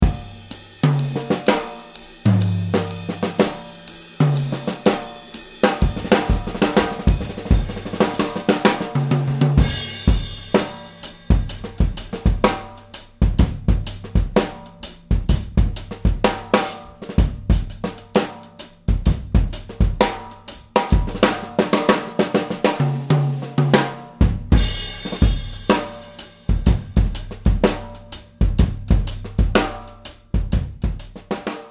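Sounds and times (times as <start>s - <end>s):
drums recorded with room microphones: 0.0s - 31.6s.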